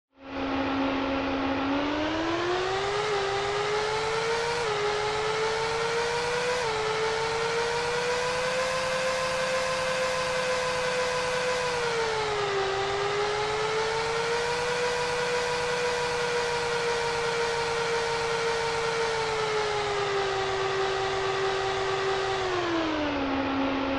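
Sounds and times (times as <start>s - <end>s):
racing engine from SNES game: 0.1s - 23.9s.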